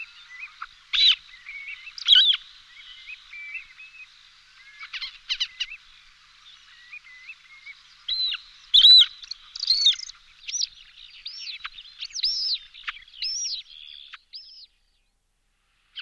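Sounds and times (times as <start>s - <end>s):
Montagu's harrier Circus pygargus chattering calls: 0.0s - 4.0s, 4.6s - 5.9s, 6.7s - 13.6s.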